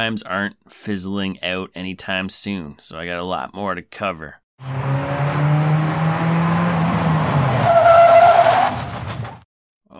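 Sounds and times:
speech: 0:00.0 - 0:05.1
car engine whine: 0:04.6 - 0:08.0
car tires screeching as it brakes hard: 0:04.6 - 0:09.4.

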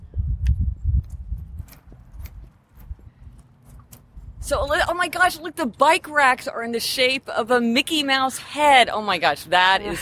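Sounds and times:
footsteps walking outdoors: 0:00.9 - 0:06.4
speech: 0:04.5 - 0:10.0.

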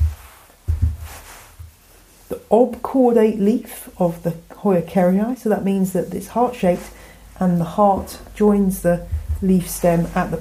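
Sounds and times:
pine cones bumped against a tabletop: 0:00.0 - 0:01.7, 0:09.0 - 0:09.7
speech: 0:02.3 - 0:10.3.

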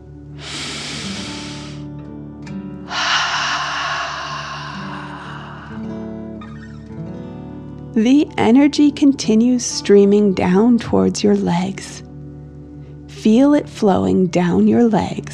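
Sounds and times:
soft steady music: 0:00.0 - 0:15.3
slow deep breath in through nose: 0:00.4 - 0:01.9, 0:02.9 - 0:06.7
speech: 0:08.0 - 0:12.0, 0:13.2 - 0:15.3.

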